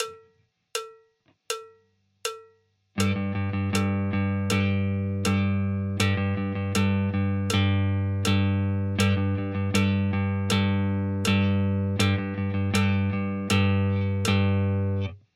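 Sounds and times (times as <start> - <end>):
rhythm guitar: 3.0 - 15.2.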